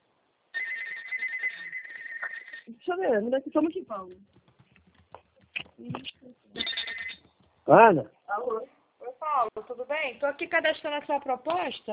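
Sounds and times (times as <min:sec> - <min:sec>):
mobile phone ringtone: 0:00.6 - 0:02.7, 0:06.6 - 0:07.3
speech: 0:02.7 - 0:04.4, 0:05.8 - 0:06.4, 0:07.7 - 0:11.9.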